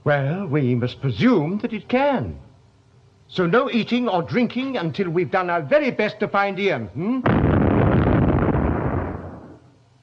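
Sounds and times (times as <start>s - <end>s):
speech: 0.0s - 2.5s, 3.3s - 7.6s
deep distant boom: 7.3s - 9.6s.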